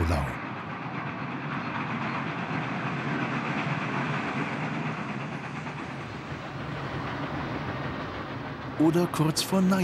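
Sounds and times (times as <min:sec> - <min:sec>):
train running on rails during staged run-by: 0:00.0 - 0:09.8
speech: 0:08.8 - 0:09.8.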